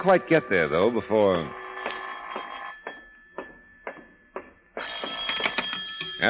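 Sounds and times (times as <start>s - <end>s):
speech: 0.0s - 1.6s
telephone bell ringing: 1.4s - 3.8s, 4.8s - 6.2s.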